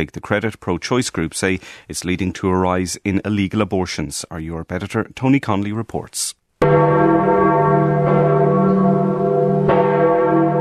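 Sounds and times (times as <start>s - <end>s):
speech: 0.0s - 7.4s
large bells of St. Peter's Basilica in Rome ringing: 6.6s - 10.5s.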